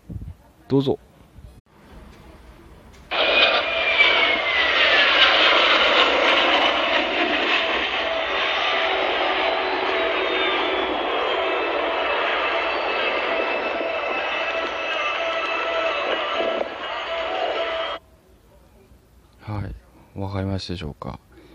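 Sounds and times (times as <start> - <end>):
speech: 0.7 - 1.1, 20.6 - 21.3
jet-engined trainer aircraft engine rush during flypast at 150 meters altitude: 2.5 - 18.0.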